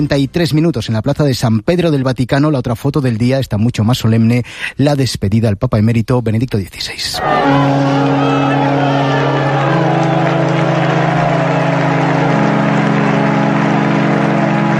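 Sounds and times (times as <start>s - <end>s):
speech: 0.0s - 9.8s
large crowd applauding as coffin passes: 7.2s - 14.7s.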